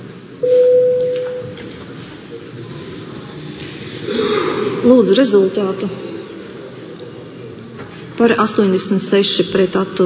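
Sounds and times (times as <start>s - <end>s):
low hum: 0.0s - 10.0s
parliament chamber voting bell: 0.4s - 1.6s
speech: 4.9s - 6.1s, 8.2s - 10.0s.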